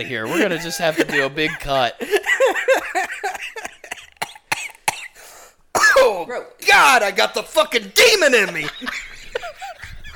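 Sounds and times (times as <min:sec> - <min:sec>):
speech: 0:00.0 - 0:02.3, 0:06.3 - 0:09.1
laughter: 0:00.0 - 0:04.2, 0:08.0 - 0:10.1
person coughing into a microphone: 0:03.6 - 0:06.2.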